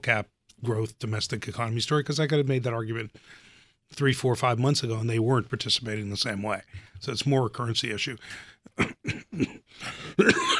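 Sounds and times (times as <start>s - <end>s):
speech: 0.0s - 10.5s
coughs: 8.8s - 10.5s.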